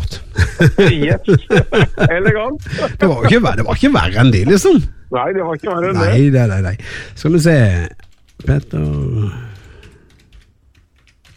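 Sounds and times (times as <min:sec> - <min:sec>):
low hum: 0:00.0 - 0:11.3
laughter: 0:00.1 - 0:03.7
speech: 0:00.6 - 0:09.5
slow one-finger typing on a computer keyboard: 0:08.0 - 0:11.3.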